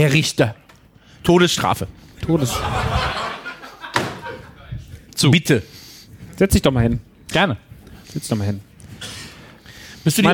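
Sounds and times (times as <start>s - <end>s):
speech: 0.0s - 0.6s, 1.2s - 3.2s, 5.2s - 5.8s, 6.4s - 8.7s, 10.0s - 10.3s
room noise: 0.0s - 10.3s
laughter: 2.2s - 4.8s
door slamming shut: 3.9s - 4.4s.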